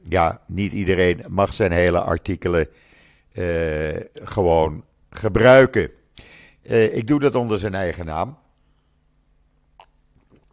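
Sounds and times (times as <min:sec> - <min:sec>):
speech: 0:00.1 - 0:08.4
sipping water: 0:09.7 - 0:10.5.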